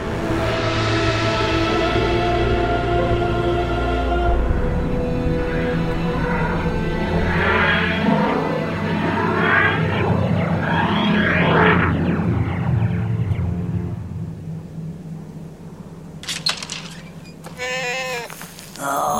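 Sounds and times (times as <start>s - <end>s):
rumbling, whooshing noise: 0.0s - 17.6s
goat-like animal bleating: 17.4s - 19.1s.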